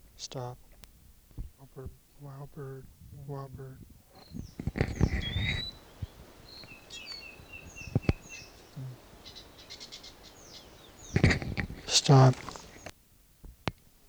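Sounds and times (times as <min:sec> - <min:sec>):
speech: 0:00.2 - 0:00.6, 0:01.7 - 0:05.7, 0:08.8 - 0:09.0, 0:12.0 - 0:12.5
wild bird chirping and whistling: 0:01.8 - 0:12.9.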